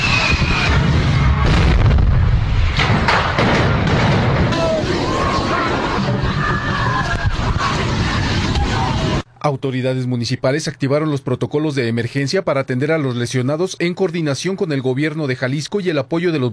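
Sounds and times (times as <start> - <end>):
crackling fireworks: 0.0 - 9.2
dense roar: 0.0 - 9.2
explosions and sharp bangs from gas tanks going off: 0.0 - 9.2
indistinct shouting voices: 4.4 - 9.2
speech: 9.5 - 16.5.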